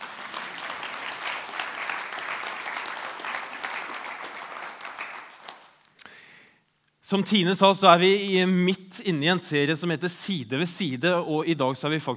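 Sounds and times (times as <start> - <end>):
audience applause: 0.0 - 5.8
speech: 7.1 - 12.1.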